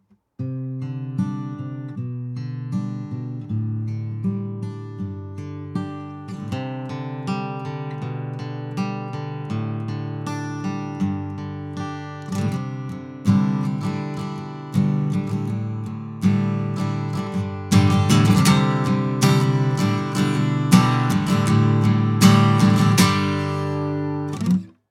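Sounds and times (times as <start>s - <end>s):
acoustic guitar without effects: 0.0s - 24.8s.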